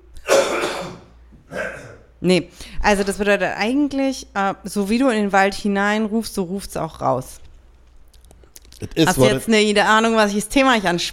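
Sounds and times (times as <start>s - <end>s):
man coughing: 0.2s - 2.1s
speech: 2.2s - 7.4s, 8.8s - 11.1s.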